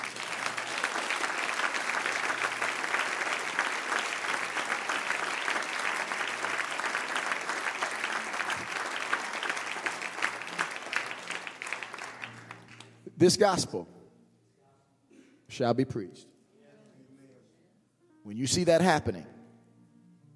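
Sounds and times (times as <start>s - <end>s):
audience applause: 0.0s - 12.9s
speech: 13.2s - 14.0s, 15.6s - 16.3s, 18.3s - 19.3s.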